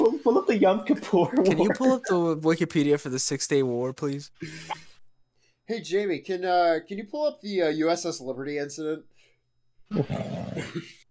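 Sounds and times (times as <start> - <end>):
speech: 0.2 - 4.9, 5.7 - 9.1, 9.9 - 11.0
dog barking and growling: 9.9 - 10.8.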